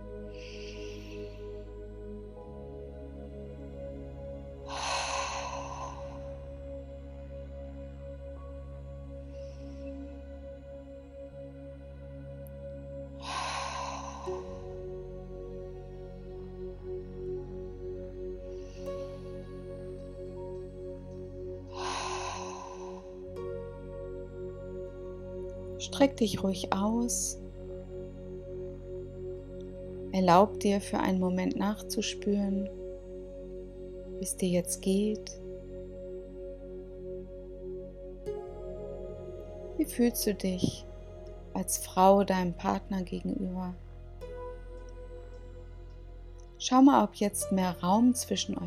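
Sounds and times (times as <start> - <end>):
calm sustained musical drone: 0.0 - 48.6
slow deep breaths in and out: 0.1 - 2.4, 4.4 - 7.4, 13.2 - 15.2, 21.2 - 23.4
speech: 25.8 - 27.4, 30.2 - 32.8, 34.2 - 35.4, 39.9 - 40.9, 41.7 - 43.8, 46.7 - 48.6.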